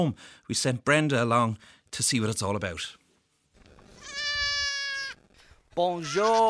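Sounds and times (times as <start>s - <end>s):
speech: 0.0s - 3.0s, 5.8s - 6.4s
goat bleating on a back lawn: 3.7s - 6.4s.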